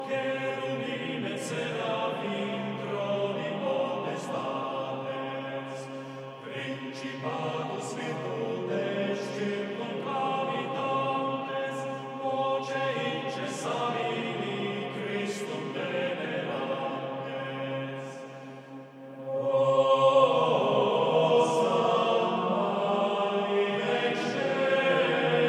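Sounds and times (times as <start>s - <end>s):
liturgical chant: 0.0s - 25.4s.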